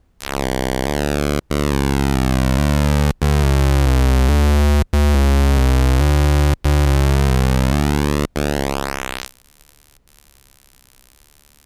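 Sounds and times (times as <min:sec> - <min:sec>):
spread pulse width tone: 0:00.2 - 0:09.3.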